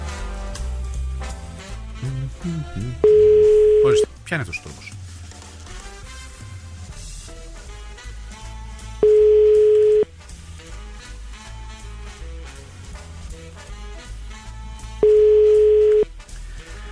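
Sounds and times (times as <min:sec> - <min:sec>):
soft music: 0:00.0 - 0:16.9
speech: 0:02.0 - 0:05.0
telephone line ringback tone with call unanswered: 0:03.0 - 0:04.1, 0:09.0 - 0:10.1, 0:15.0 - 0:16.1.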